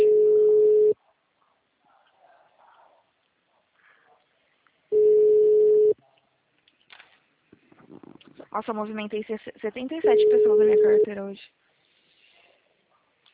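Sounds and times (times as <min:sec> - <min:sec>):
telephone ringing on the line: 0:00.0 - 0:01.0, 0:04.9 - 0:06.0, 0:10.0 - 0:11.1
speech: 0:08.6 - 0:11.6.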